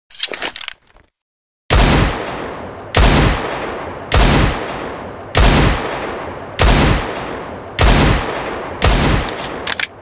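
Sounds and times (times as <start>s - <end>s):
Desert Eagle pistol gunshot: 3.0s - 4.8s, 5.4s - 9.6s.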